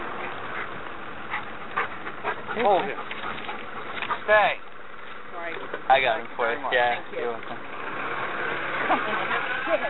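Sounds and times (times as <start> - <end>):
yellow Labrador panting: 0.1 - 4.6
speech: 2.6 - 3.1, 4.3 - 4.7, 5.9 - 7.7, 8.9 - 9.8.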